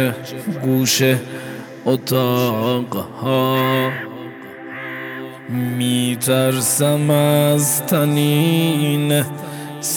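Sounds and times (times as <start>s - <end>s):
speech: 0.0s - 4.1s, 5.5s - 9.9s
crows cawing: 3.6s - 5.7s.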